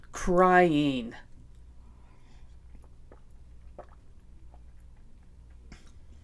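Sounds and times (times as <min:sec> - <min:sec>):
low steady hum: 0:00.0 - 0:06.2
speech: 0:00.2 - 0:01.3
person drinking water: 0:01.4 - 0:06.2
loud gulping swallow: 0:02.7 - 0:06.2.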